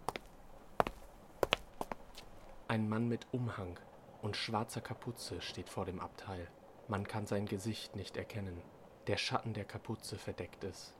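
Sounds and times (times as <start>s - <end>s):
heel-and-toe footsteps: 0.0s - 2.6s
quiet room hiss: 0.0s - 10.9s
speech: 2.7s - 10.9s.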